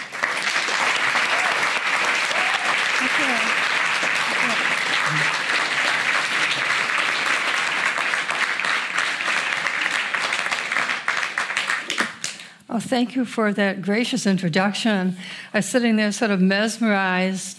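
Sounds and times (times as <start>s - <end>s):
large audience applauding: 0.0s - 12.4s
speech: 3.1s - 3.6s, 12.8s - 17.5s.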